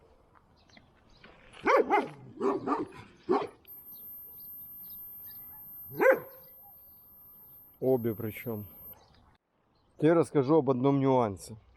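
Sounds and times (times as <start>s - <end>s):
dog barking: 1.6s - 3.6s, 6.0s - 6.4s
speech: 1.9s - 3.0s, 8.0s - 8.8s, 10.0s - 11.6s.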